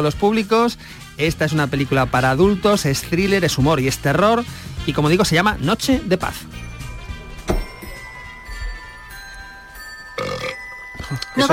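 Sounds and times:
speech: 0:00.0 - 0:06.7, 0:11.4 - 0:11.5
soft music with ringing bell-like tones: 0:05.0 - 0:11.5
loud drawn-out burp: 0:10.2 - 0:10.7.

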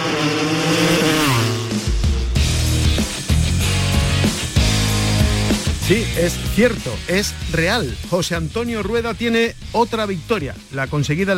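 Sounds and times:
racing motorcycle engines revving through rapid gear shifts: 0:00.0 - 0:06.5
speech: 0:05.9 - 0:11.3.

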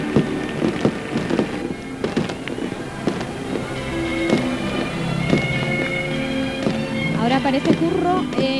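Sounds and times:
fireworks exploding over a lake: 0:00.0 - 0:08.5
murmuring background: 0:00.0 - 0:08.5
speech: 0:07.5 - 0:08.5.

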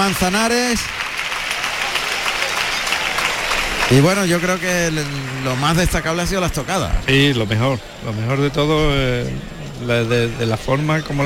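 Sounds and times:
speech: 0:00.0 - 0:01.1, 0:03.9 - 0:11.2
bullring crowd giving a sustained ovation: 0:00.0 - 0:07.6.

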